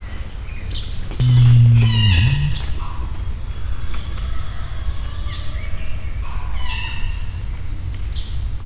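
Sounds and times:
rhea at a zoo in Miskolc: 1.1s - 2.9s.

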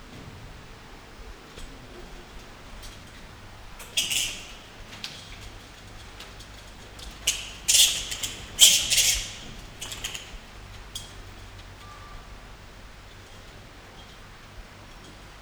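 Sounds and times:
Indian flying fox calls at Nyíregyháza zoo: 3.8s - 5.0s, 6.8s - 10.6s.

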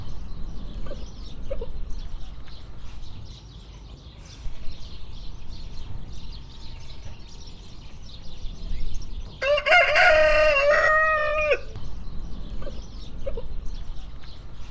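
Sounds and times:
partridge-coloured Hungarian rooster crowing in Hortobágy National Park: 9.4s - 11.8s.

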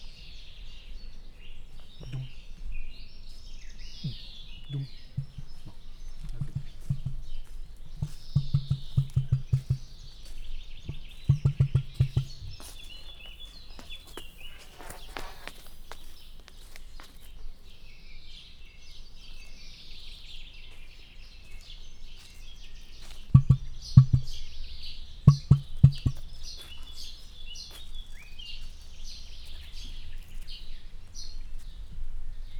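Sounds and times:
emu calling in a zoo: 4.0s - 7.4s, 8.0s - 10.0s, 11.3s - 12.7s, 23.3s - 24.4s, 25.3s - 26.3s.

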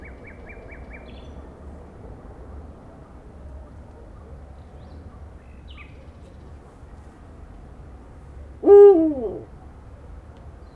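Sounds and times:
little owl hooting: 8.6s - 9.4s.

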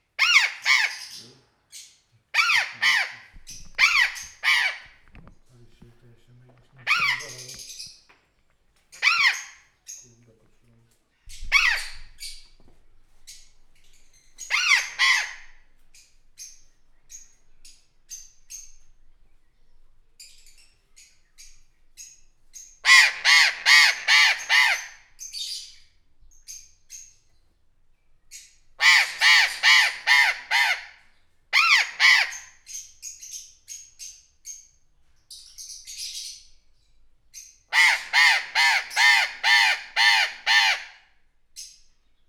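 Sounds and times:
burrowing parrot calling with greater vehemence at a zoo: 0.2s - 1.2s, 2.3s - 5.0s, 6.8s - 7.8s, 9.0s - 9.7s, 11.3s - 12.4s, 14.4s - 15.6s, 22.8s - 25.7s, 28.8s - 32.9s, 37.7s - 41.1s.

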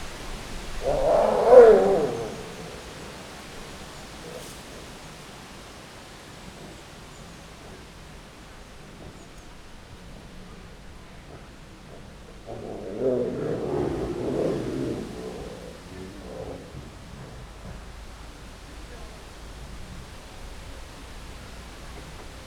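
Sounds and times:
Bengal tigers mating forcefully in Győr zoo: 0.4s - 4.9s, 11.9s - 18.0s.

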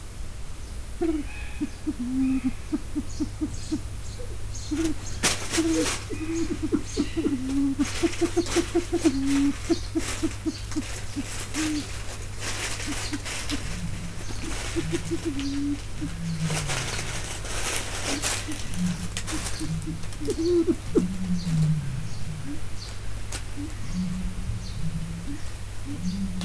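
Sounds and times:
silver pheasant walking on dry leaves in Miskolc zoo: 1.0s - 26.4s.

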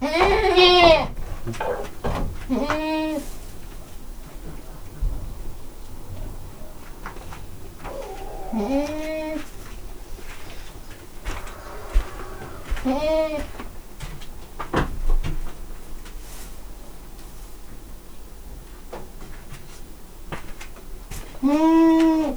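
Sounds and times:
domestic goat in a farmyard: 0.0s - 3.3s, 7.7s - 9.9s, 11.1s - 13.6s, 21.4s - 22.3s.

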